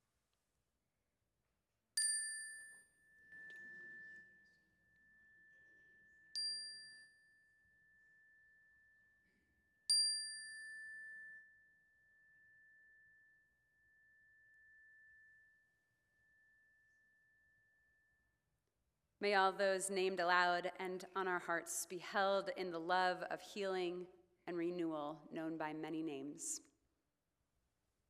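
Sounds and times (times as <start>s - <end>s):
meditation chime struck and ringing: 2.0s - 18.4s
speech: 19.2s - 26.7s.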